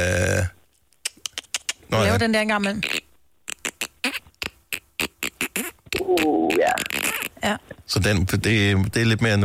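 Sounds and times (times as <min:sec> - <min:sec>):
person imitating dolphin clicks and squeaks: 0:01.0 - 0:01.8, 0:02.8 - 0:07.4
speech: 0:01.9 - 0:03.0, 0:07.4 - 0:09.4.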